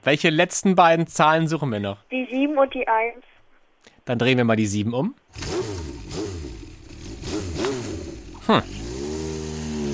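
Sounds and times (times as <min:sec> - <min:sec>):
speech: 0:00.0 - 0:03.3, 0:04.0 - 0:05.9, 0:08.5 - 0:08.8
motorcycle engine revving: 0:05.3 - 0:09.9.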